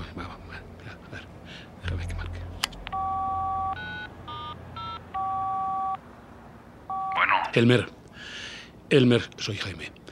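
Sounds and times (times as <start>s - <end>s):
faint breathing: 0.8s - 2.6s, 8.1s - 8.8s
touch-tone beeps of a phone being dialed in Ciudad Jiménez: 2.9s - 6.0s, 6.9s - 7.3s
speech: 7.6s - 8.0s, 8.9s - 10.0s.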